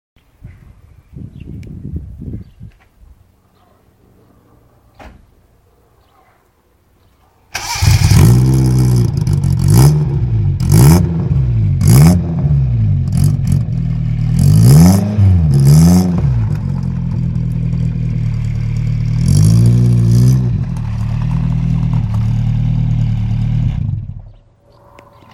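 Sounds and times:
Suzuki Carry small truck: 7.6 - 24.5.

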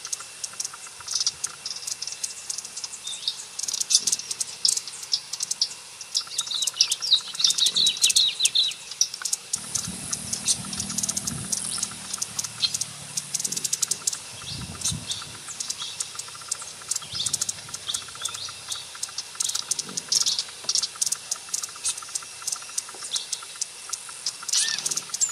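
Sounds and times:
Black-crested coquette twittering chips and dry ticks: 0.0 - 25.2
low rumble: 9.6 - 15.8.

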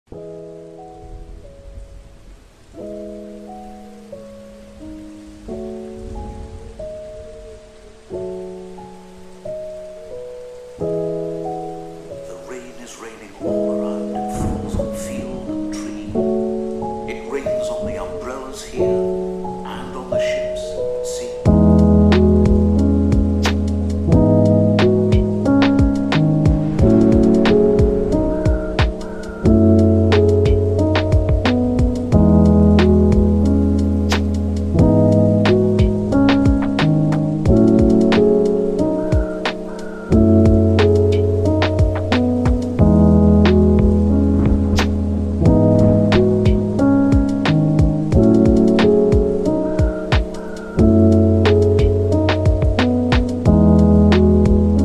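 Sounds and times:
music: 0.1 - 54.8
rain: 0.1 - 54.8
thunder: 0.8 - 3.4, 5.4 - 8.7, 13.9 - 18.0, 21.5 - 54.8.

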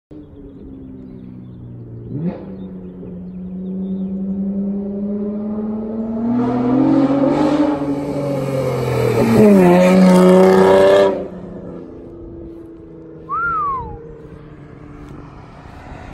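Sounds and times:
Acura car: 0.1 - 16.1.

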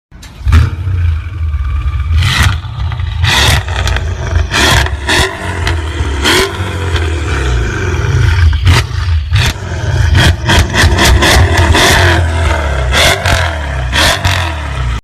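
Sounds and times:
car exhaust: 0.4 - 15.0.

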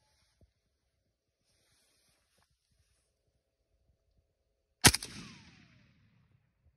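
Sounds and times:
AK-47 rifle gunfire: 4.9 - 5.9.

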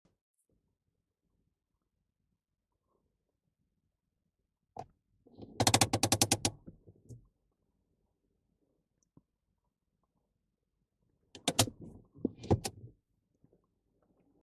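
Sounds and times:
car handbrake: 5.6 - 6.6, 11.4 - 12.8.

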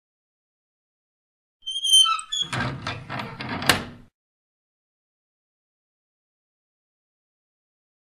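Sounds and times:
rusty metal: 1.7 - 3.9.

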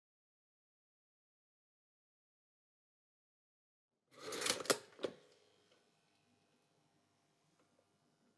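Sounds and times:
toaster: 4.2 - 5.2.

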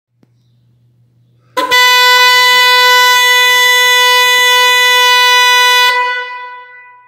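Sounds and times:
Fiam Cadillac car horn: 1.6 - 7.0.

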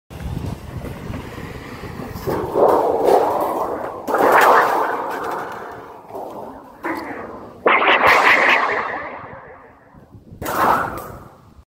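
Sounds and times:
metal plate: 2.3 - 11.4.

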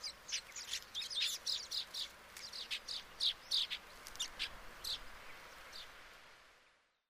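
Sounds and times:
Baya weaver chirps: 0.0 - 5.0
background hiss: 0.0 - 7.0.

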